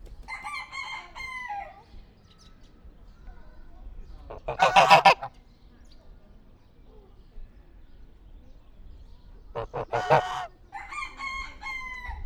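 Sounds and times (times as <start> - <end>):
faint wind: 0.0 - 12.2
domestic goose honking: 4.3 - 5.3, 9.6 - 10.5
domestic goose hissing: 9.7 - 10.5.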